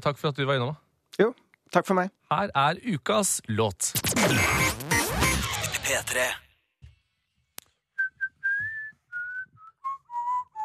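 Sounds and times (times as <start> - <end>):
speech: 0.0 - 4.8, 5.9 - 6.4
person whistling a song melody: 8.0 - 10.6.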